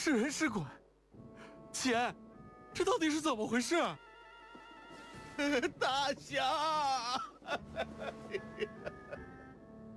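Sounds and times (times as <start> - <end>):
speech: 0.0 - 0.8, 1.8 - 2.2, 2.8 - 4.0, 5.4 - 9.3
person sobbing with joy: 5.4 - 9.3.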